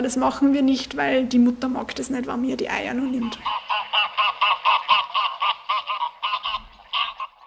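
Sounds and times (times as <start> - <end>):
speech: 0.0 - 3.6
greylag geese honking: 3.2 - 7.4.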